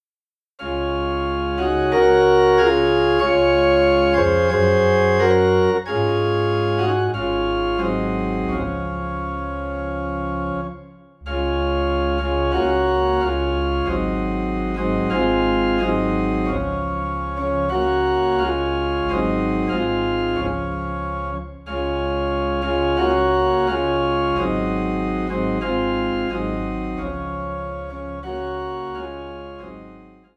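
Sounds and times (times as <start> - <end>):
organ playing in D flat: 0.6 - 30.3.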